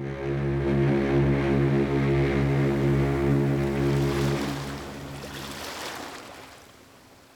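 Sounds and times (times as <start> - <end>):
boat engine droning at sea: 0.0 - 6.6
rushing wash of water and waves at sea: 2.7 - 7.3.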